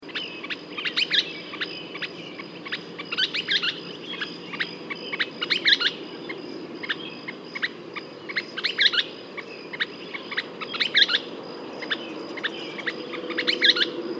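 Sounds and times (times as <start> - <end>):
Western Kingbird Tyrannus verticalis calling: 0.0 - 14.1.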